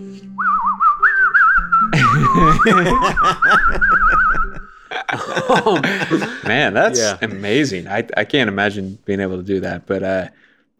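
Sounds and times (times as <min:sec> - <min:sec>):
high reedy tin whistle playing a trilling melody: 0:00.2 - 0:04.7
laughter: 0:01.9 - 0:07.3
speech: 0:02.4 - 0:04.4, 0:05.4 - 0:10.4.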